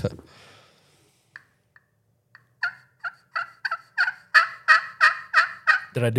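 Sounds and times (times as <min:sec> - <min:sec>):
speech: 0:00.0 - 0:00.2, 0:06.0 - 0:06.1
glass-over-slate friction turkey call yelps: 0:02.6 - 0:06.0.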